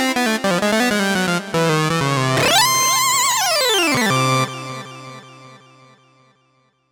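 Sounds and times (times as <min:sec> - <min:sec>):
jazzy synth lead on a Novation UltraNova: 0:00.2 - 0:04.7.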